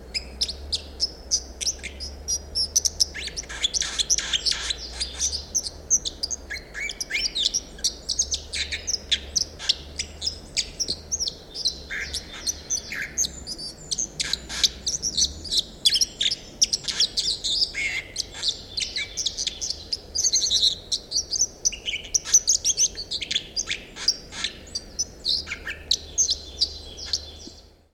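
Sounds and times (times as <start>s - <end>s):
white-throated dipper: 0.2s - 27.6s.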